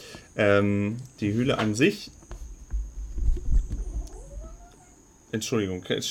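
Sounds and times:
speech: 0.4s - 2.2s, 5.3s - 6.0s
cats yowling: 3.7s - 5.1s.

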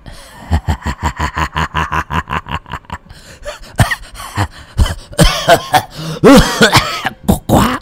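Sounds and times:
laughter: 0.3s - 6.7s
old man's coughing fit performed by a voice: 3.5s - 7.7s.

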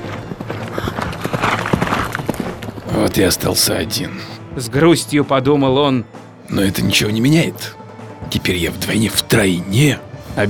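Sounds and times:
horse galloping after being spurred by its rider: 0.0s - 3.8s
speech: 3.0s - 10.4s.

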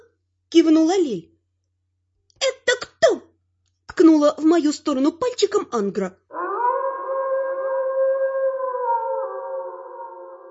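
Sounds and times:
speech: 0.5s - 1.3s, 4.2s - 6.2s
wolf howling outside a window: 6.3s - 10.4s.

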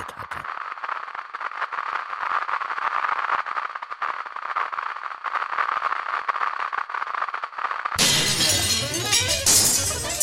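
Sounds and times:
crackling hissing noise: 0.0s - 10.2s
glass shattering from thrown stones: 8.0s - 10.2s.

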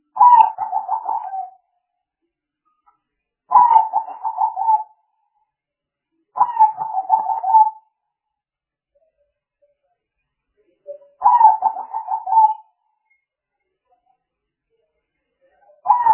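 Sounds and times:
spotted dove cooing: 0.2s - 1.6s, 3.5s - 4.9s, 6.4s - 7.8s, 11.2s - 12.6s, 15.9s - 16.1s.

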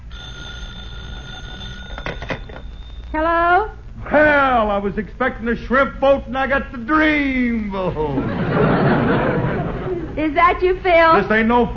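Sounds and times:
telephone bell ringing in a home: 0.1s - 3.1s
speech: 3.1s - 9.6s, 10.2s - 11.7s
laughter: 7.8s - 10.4s.

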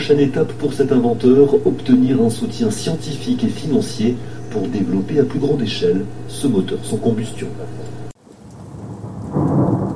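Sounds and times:
speech: 0.0s - 7.8s
rain hissing: 0.0s - 9.9s
thunder crack: 8.4s - 9.9s.

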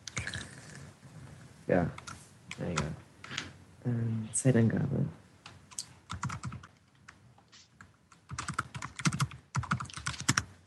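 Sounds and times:
speech: 1.7s - 2.0s, 3.8s - 5.2s
loud rapid typing on a computer keyboard: 5.7s - 6.8s, 8.1s - 10.6s.

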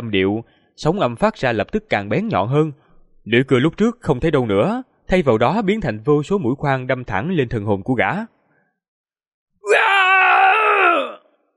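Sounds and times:
speech: 0.0s - 8.4s, 9.7s - 9.9s
fierce roaring scream from a man under attack: 9.6s - 11.3s.

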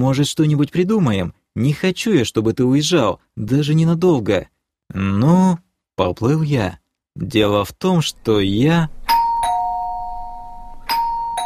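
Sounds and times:
speech: 0.0s - 9.0s
melodic doorbell chime in a hallway: 9.1s - 11.4s.

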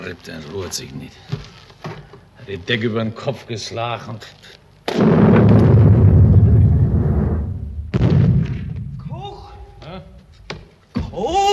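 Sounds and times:
speech: 0.1s - 5.6s, 11.2s - 11.5s
gunfire in a stage play war scene: 4.9s - 9.2s.

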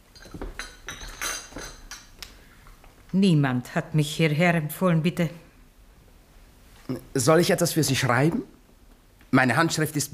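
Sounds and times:
glass and china glasses and cups clinking as they are cleared away: 0.0s - 2.2s
speech: 3.1s - 5.4s, 6.9s - 8.6s, 9.3s - 10.1s.

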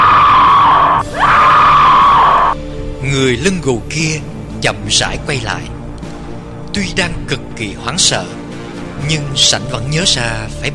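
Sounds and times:
two women screaming together in terror: 0.0s - 2.6s
speech: 3.2s - 5.8s, 6.7s - 8.4s, 9.0s - 10.7s.

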